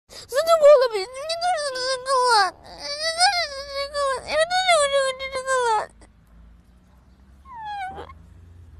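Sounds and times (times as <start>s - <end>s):
boy crying: 0.2s - 6.0s.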